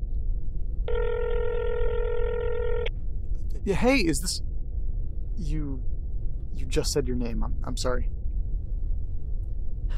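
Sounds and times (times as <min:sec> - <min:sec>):
low hum: 0:00.0 - 0:09.9
ringback tone on a phone line: 0:00.9 - 0:02.9
speech: 0:03.6 - 0:04.5, 0:05.4 - 0:05.9, 0:06.6 - 0:08.2.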